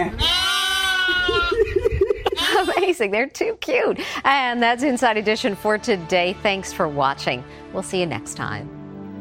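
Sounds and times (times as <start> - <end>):
sheep bleating: 0.1 - 1.5
laughter: 1.1 - 3.0
speech: 3.0 - 8.7.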